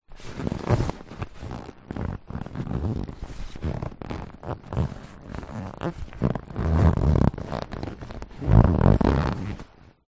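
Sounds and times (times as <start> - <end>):
inflated lilo or rubber ring squeaking and creaking with body movements: 0.2 - 9.7.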